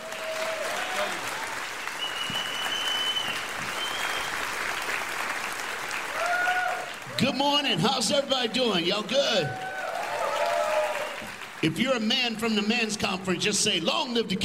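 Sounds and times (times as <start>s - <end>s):
large church audience applauding a guest speaker: 0.0s - 13.5s
audience cheering: 0.0s - 14.4s
audience whistles: 1.8s - 4.5s
speech: 7.2s - 9.6s, 11.6s - 14.4s.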